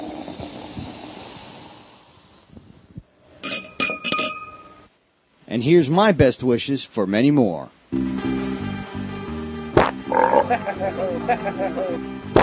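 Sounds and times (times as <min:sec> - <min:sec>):
glasses clinking in a celebratory toast: 0:03.4 - 0:04.8
speech: 0:05.6 - 0:08.1, 0:10.5 - 0:12.3
laughter: 0:10.3 - 0:12.1.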